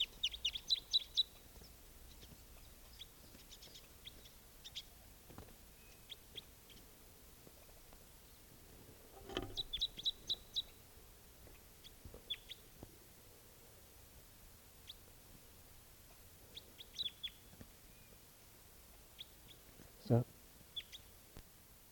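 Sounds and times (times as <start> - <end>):
wild bird calling with high short chirps: 0.0 - 5.0, 5.7 - 6.9, 9.2 - 10.8, 11.5 - 12.6, 16.5 - 18.2, 19.1 - 21.2.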